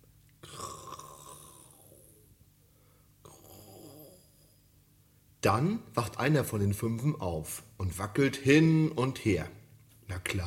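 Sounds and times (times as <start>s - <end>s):
voice imitating raspy snoring: 0.4s - 2.3s, 3.2s - 4.6s
speech: 5.4s - 9.6s, 10.2s - 10.4s.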